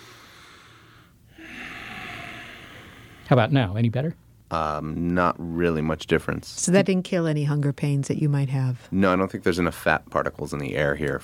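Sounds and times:
person taking a breath of air through the nose: 0.0s - 3.3s
speech: 3.3s - 11.2s.

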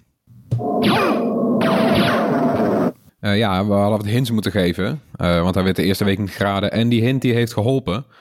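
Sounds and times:
swishing sweeping mobile video game sound effect with clashing noise: 0.6s - 3.0s
speech: 3.2s - 8.2s.

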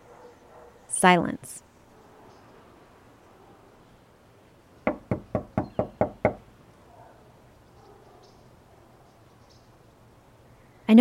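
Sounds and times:
speech: 1.0s - 1.6s
knocking on a door: 4.8s - 6.4s.

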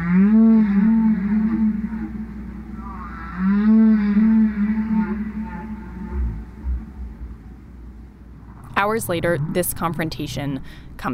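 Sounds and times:
recorded whale song blasted over loudspeakers: 0.0s - 7.1s
low rumbling background: 0.0s - 11.1s
speech: 8.8s - 11.1s.

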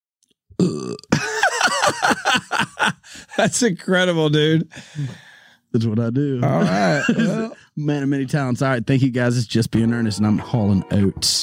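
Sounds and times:
speech: 0.6s - 1.0s, 3.4s - 11.4s
man burping loudly on command: 0.6s - 1.9s, 6.4s - 7.6s
laughter: 1.2s - 3.6s, 6.4s - 7.7s.

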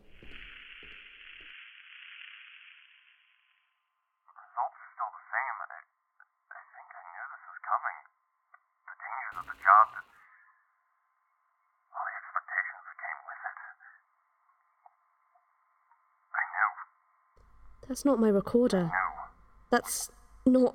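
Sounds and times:
radio transmission static hiss: 0.0s - 3.6s, 4.3s - 5.9s, 6.5s - 8.1s, 8.9s - 10.2s, 11.9s - 14.1s, 16.3s - 16.9s
thin band-limited garbled voice over radio transmission: 4.3s - 5.8s, 6.5s - 8.1s, 8.9s - 10.0s, 11.9s - 14.0s, 16.3s - 16.8s
speech: 17.9s - 19.0s, 19.7s - 20.7s.

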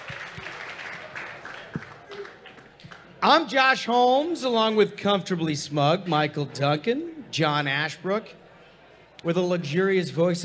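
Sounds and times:
crowd at a live event clapping: 0.0s - 3.2s
murmur of voices: 0.0s - 10.4s
speech: 3.2s - 8.4s, 9.2s - 10.4s.

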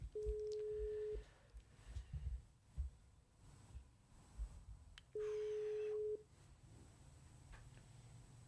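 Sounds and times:
ringback tone of an unanswered outgoing phone call: 0.2s - 1.2s, 5.2s - 6.2s.

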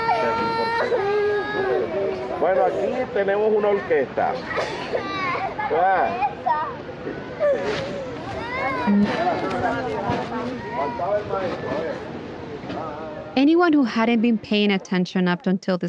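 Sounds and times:
several children wailing and sobbing for their parents: 0.0s - 9.8s, 10.4s - 11.9s
murmur of voices: 0.0s - 15.8s
speech: 2.4s - 6.3s, 7.5s - 8.0s, 8.8s - 12.1s, 12.7s - 15.8s.

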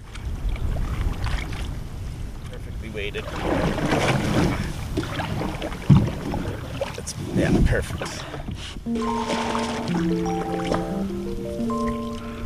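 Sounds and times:
gusty wind buffeting the microphone outdoors: 0.0s - 8.9s
canoe paddling on a river: 0.0s - 12.4s
speech: 3.0s - 11.8s.

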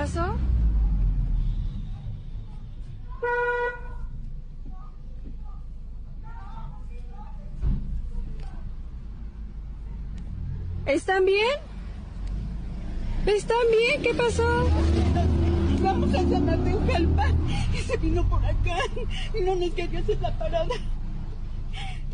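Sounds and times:
steady low traffic rumble: 0.0s - 22.1s
street noise: 0.0s - 22.1s
car horn honking: 1.3s - 4.1s
speech: 10.9s - 11.7s, 13.2s - 20.9s.

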